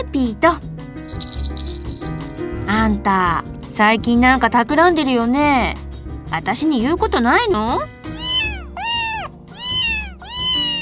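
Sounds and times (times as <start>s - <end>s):
speech: 0.0s - 1.7s, 2.7s - 7.9s
cat meowing: 8.2s - 10.7s.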